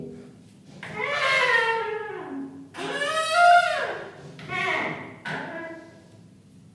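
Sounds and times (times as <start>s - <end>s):
sliding shower door squealing: 0.8s - 5.5s.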